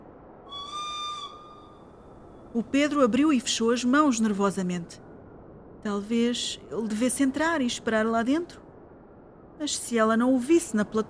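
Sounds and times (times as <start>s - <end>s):
low constant rumble: 0.0s - 11.0s
short steady warning whistle before train doors close: 0.5s - 1.7s
speech: 2.5s - 5.1s, 5.8s - 8.6s, 9.6s - 11.0s.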